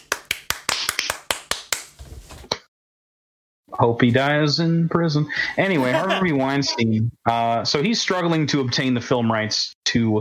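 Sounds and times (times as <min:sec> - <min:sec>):
a few people clapping hands: 0:00.0 - 0:02.0
speech: 0:03.8 - 0:10.1
laughter: 0:05.6 - 0:07.0.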